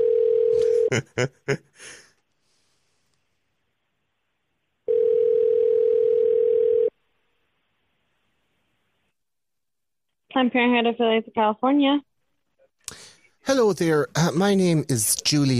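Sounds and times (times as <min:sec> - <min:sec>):
telephone ringback tone while call connects: 0:00.0 - 0:00.9, 0:04.9 - 0:06.9
laughter: 0:00.6 - 0:01.9
speech: 0:00.9 - 0:02.0, 0:10.4 - 0:12.1, 0:13.5 - 0:15.5.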